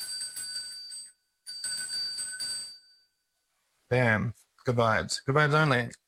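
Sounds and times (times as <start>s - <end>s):
small cleansing bell jingling: 0.0s - 3.2s
speech: 3.9s - 6.0s.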